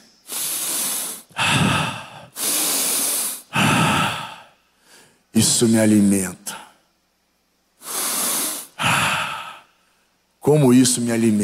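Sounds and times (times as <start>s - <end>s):
person imitating heavy deep sniffing of a demon: 0.0s - 5.1s, 7.8s - 9.7s
speech: 5.4s - 6.6s, 10.5s - 11.4s.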